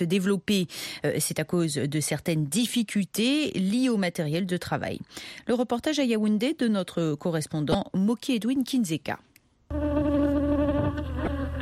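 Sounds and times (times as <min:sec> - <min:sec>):
speech: 0:00.0 - 0:09.9
honeybee swarm buzzing: 0:09.7 - 0:11.6.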